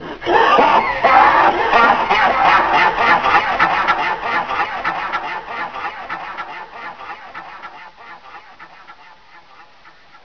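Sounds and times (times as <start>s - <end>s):
person laughing weirdly: 0.2s - 5.7s.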